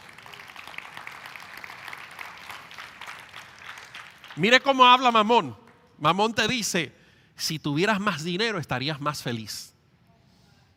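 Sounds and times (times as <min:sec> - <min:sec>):
crowd applauding in a large room: 0:00.0 - 0:04.7
speech: 0:04.4 - 0:09.7.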